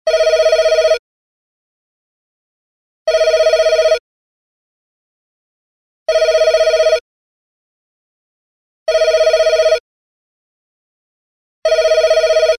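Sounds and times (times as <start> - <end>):
electronic phone ringtone: 0.1 - 1.0, 3.1 - 4.0, 6.1 - 7.0, 8.9 - 9.8, 11.6 - 12.5.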